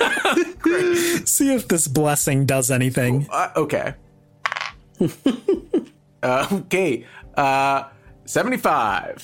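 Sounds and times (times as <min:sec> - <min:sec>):
speech: 0:00.0 - 0:04.1, 0:05.0 - 0:09.2
dice rattling: 0:04.4 - 0:04.8.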